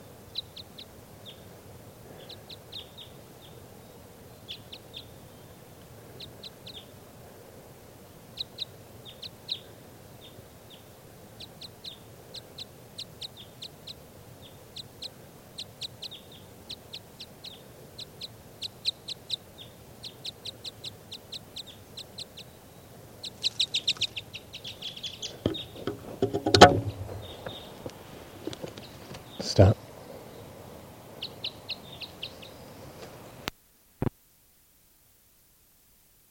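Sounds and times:
wild bird in a tree chirping: 0.0s - 1.5s, 2.1s - 7.0s, 8.3s - 33.5s
rustling thump: 25.4s - 27.6s.

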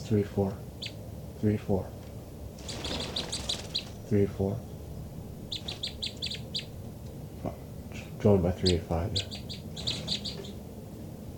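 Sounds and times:
birds chirping: 0.0s - 11.3s
speech: 0.1s - 0.7s, 1.4s - 2.0s, 4.1s - 4.7s, 8.2s - 9.4s
brief lower bird call: 2.6s - 10.7s.

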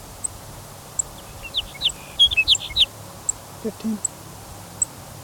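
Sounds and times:
sage sparrow, probably a female, giving chip notes: 1.2s - 2.9s
speech: 3.7s - 4.2s.

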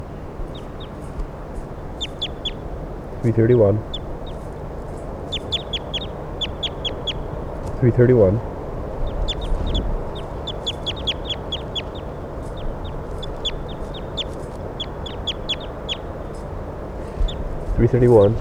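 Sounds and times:
steady low rumble: 0.0s - 18.3s
short high bird chirps: 1.9s - 2.7s, 3.8s - 7.7s, 9.0s - 18.3s
speech: 3.2s - 3.9s, 7.8s - 8.5s, 17.9s - 18.3s.

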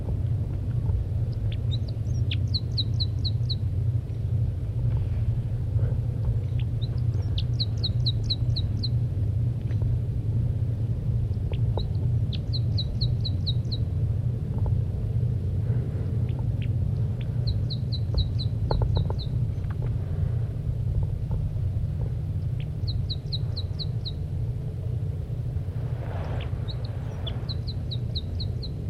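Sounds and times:
low rumble: 0.0s - 28.8s
female bird giving flight calls from the nest: 1.3s - 3.7s, 6.4s - 9.0s, 16.2s - 19.8s, 22.5s - 24.3s, 25.8s - 28.8s.

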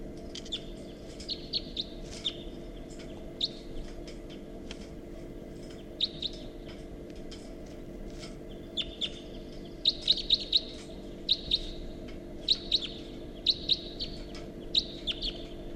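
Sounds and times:
low hum: 0.0s - 15.7s
wild bird chirping: 0.4s - 3.9s, 5.7s - 6.5s, 8.5s - 15.7s.

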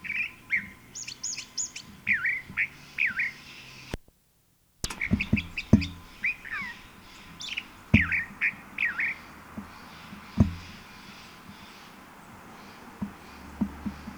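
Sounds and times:
California Thrasher singing in Strawberry Canyon, Alameda County, California: 0.0s - 3.9s, 4.8s - 14.1s
sharp clicks: 4.8s - 9.1s.

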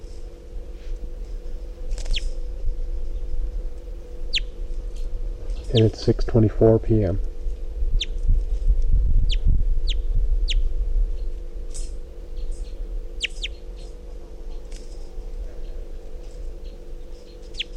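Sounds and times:
steady low hum: 0.0s - 17.7s
wild bird faint chirping calls: 4.3s - 4.5s, 5.6s - 6.0s, 12.4s - 13.6s, 16.6s - 17.7s
speech: 5.7s - 7.3s.

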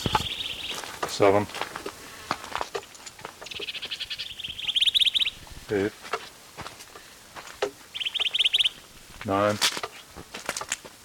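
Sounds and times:
bird giving protest notes: 0.0s - 1.5s, 3.4s - 5.9s, 7.9s - 9.4s
speech: 1.2s - 1.6s, 5.7s - 6.0s, 9.2s - 9.7s.

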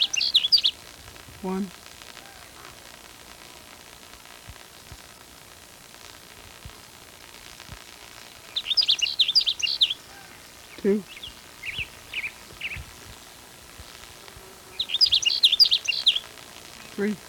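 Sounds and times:
faint sage sparrow chirps: 0.0s - 0.8s, 8.2s - 17.2s
sage sparrow singing: 0.0s - 0.8s, 8.2s - 12.9s, 14.7s - 17.2s
speech: 1.4s - 1.8s, 10.8s - 11.1s, 17.0s - 17.2s.

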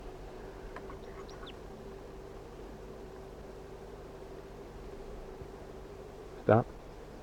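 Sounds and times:
steady low hum: 0.0s - 5.7s
crossbill chirping calls: 0.8s - 1.7s
speech: 6.5s - 6.8s.

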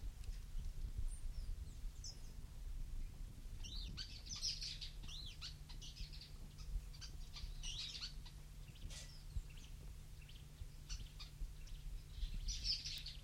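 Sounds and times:
low steady hum: 0.0s - 13.2s
two birds calling with high short chirps: 0.4s - 13.2s.

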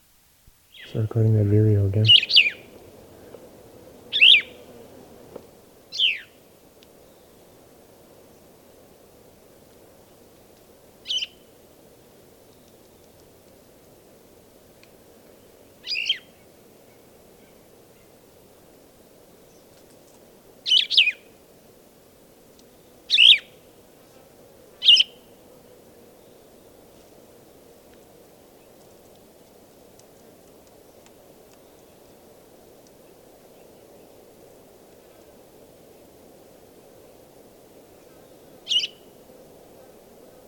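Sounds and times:
soft steady outdoor hiss: 0.0s - 40.4s
speech: 0.9s - 2.4s
short sharp bird calls while foraging: 2.0s - 2.7s, 4.1s - 4.6s, 5.9s - 6.3s, 38.7s - 39.1s.

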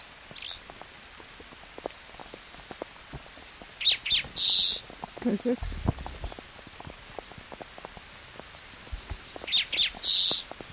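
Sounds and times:
rain falling in a soft steady patter: 0.0s - 10.7s
bird chirps: 3.8s - 4.8s, 8.4s - 10.5s
speech: 5.2s - 6.0s.

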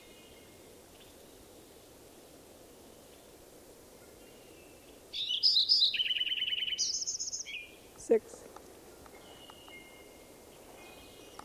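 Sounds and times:
bird singing: 0.0s - 1.8s, 4.0s - 8.2s, 8.9s - 11.4s
speech: 8.1s - 8.4s.

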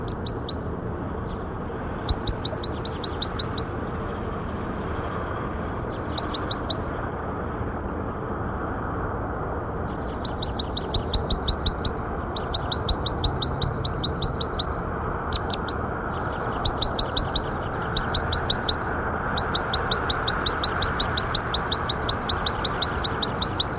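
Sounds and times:
bird calling in rapid bursts of high sharp chirps: 0.0s - 0.6s, 2.0s - 3.7s, 5.8s - 6.9s, 9.8s - 23.7s
low rumble of outdoor noise: 0.0s - 23.7s.

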